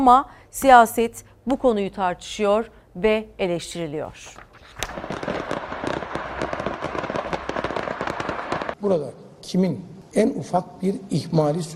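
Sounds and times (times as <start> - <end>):
speech: 0.0 - 5.1, 8.8 - 11.7
fireworks factory explosions crackling and popping: 4.4 - 8.8.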